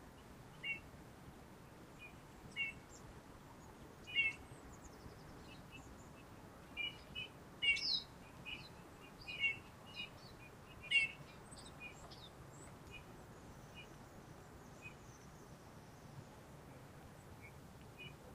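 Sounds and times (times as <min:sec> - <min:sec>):
Eurasian bullfinch Pyrrhula pyrrhula soft piping calls: 0:00.5 - 0:00.8, 0:02.0 - 0:02.9, 0:04.0 - 0:04.5, 0:06.8 - 0:13.1.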